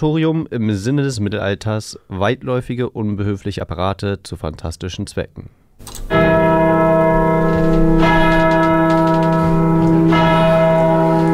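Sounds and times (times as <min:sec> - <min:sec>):
speech: 0:00.0 - 0:06.0
large bell tolling: 0:06.1 - 0:11.3.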